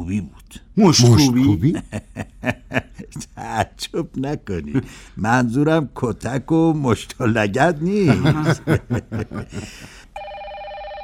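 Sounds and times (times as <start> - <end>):
speech: 0.0 - 10.0
laughter: 1.4 - 3.2, 8.0 - 10.0
telephone ringing with a steady electronic tone: 10.2 - 11.0.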